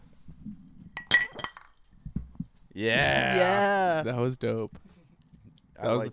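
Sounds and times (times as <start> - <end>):
glasses clinking in a toast: 0.9 - 1.9
speech: 2.8 - 4.9, 5.8 - 6.1.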